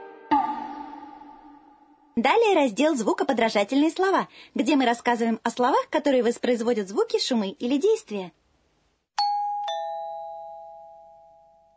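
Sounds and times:
speech: 2.2 - 8.4
two-tone electronic doorbell chime: 9.2 - 11.7.

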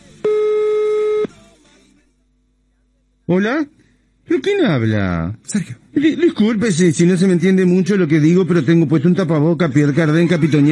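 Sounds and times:
telephone tone on a call line: 0.2 - 1.3
speech: 3.3 - 10.7.

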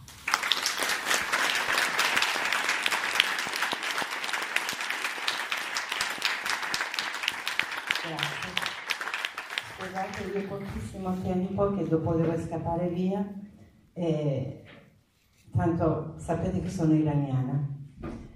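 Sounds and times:
audience applause at a public assembly: 0.0 - 10.8
speech: 10.0 - 13.4, 14.0 - 14.6, 15.6 - 17.7.

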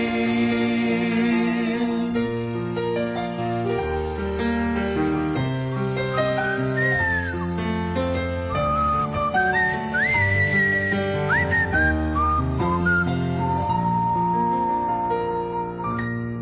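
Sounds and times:
soft sustained musical backing: 0.0 - 16.4
person whistling a tune: 6.4 - 7.6, 8.5 - 16.0.

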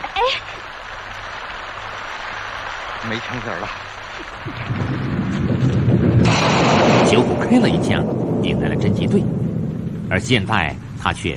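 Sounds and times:
heavy rain: 0.0 - 11.3
speech: 0.2 - 0.7, 3.0 - 5.1, 6.4 - 9.4, 10.1 - 11.3
deep rumbling thunder: 3.0 - 11.3.

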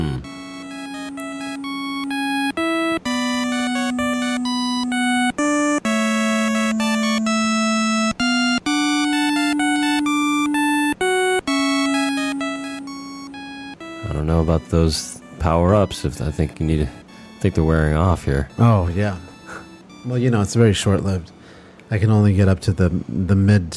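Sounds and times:
chiptune video game music: 0.0 - 23.7
speech: 14.7 - 19.3, 20.0 - 23.7.

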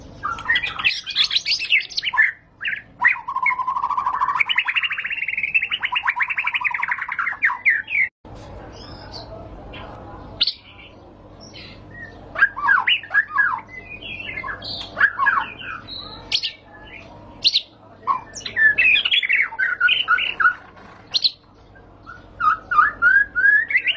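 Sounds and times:
low constant hum: 0.0 - 23.9
white-rumped shama song: 0.0 - 23.9.

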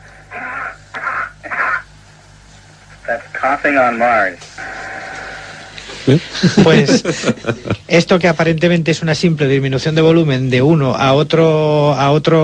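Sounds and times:
steady low hum: 0.0 - 12.4
human coughing as heard on Earth and simulated on Mars: 0.4 - 1.9
speech: 3.1 - 4.5, 6.0 - 12.4
laughter: 6.0 - 7.9.

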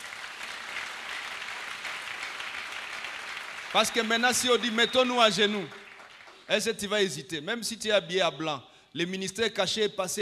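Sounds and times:
church congregation applauding: 0.0 - 7.2
speech: 3.7 - 5.8, 6.5 - 10.1.

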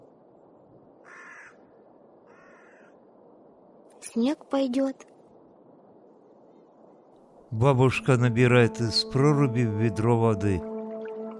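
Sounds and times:
low hiss: 0.0 - 11.3
crow cawing: 1.0 - 3.0
speech: 4.1 - 5.1, 7.6 - 10.7.

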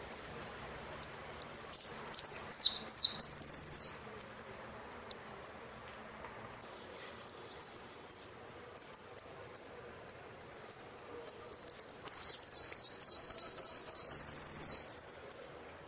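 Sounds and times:
saffron finch song: 0.0 - 15.8.

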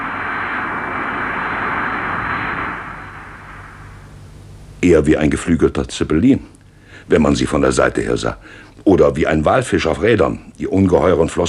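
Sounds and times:
jet airliner engine roaring while rolling on the tarmac: 0.0 - 4.4
speech: 4.8 - 11.4.

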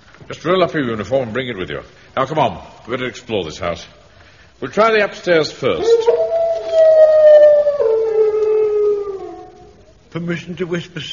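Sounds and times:
speech: 0.3 - 4.0, 4.6 - 6.2, 10.1 - 11.1
dog howling in a long sustained wail: 5.8 - 9.8.

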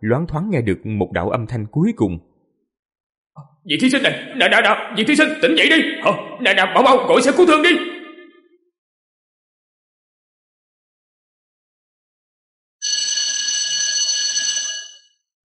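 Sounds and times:
speech: 0.0 - 2.3, 3.4 - 8.0
school bell ringing on a high school campus on exam day: 12.8 - 15.1.

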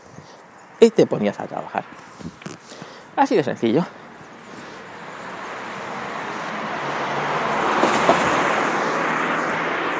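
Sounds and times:
speech: 0.8 - 2.4, 3.2 - 4.0
car passing by with road roar: 4.4 - 9.9.

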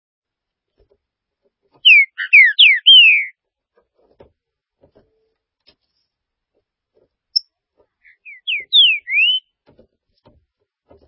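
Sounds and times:
green-winged saltator giving strong whistled notes: 1.8 - 3.3, 8.0 - 9.5.

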